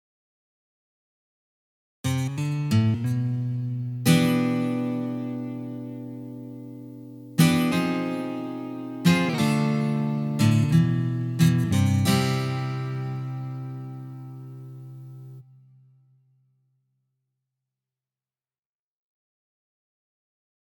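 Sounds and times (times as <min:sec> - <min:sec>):
slide guitar exercise: 0:02.2 - 0:15.4.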